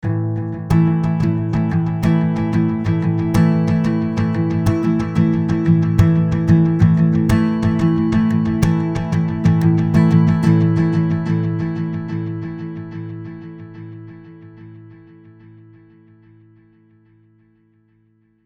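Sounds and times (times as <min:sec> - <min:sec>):
guitar ping pong: 0:00.0 - 0:13.2.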